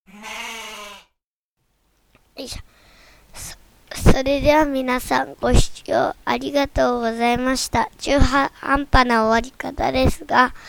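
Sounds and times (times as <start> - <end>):
goat bleating: 0.1 - 1.1
faint low hiss: 1.6 - 10.6
speech: 2.4 - 3.6, 4.2 - 10.6.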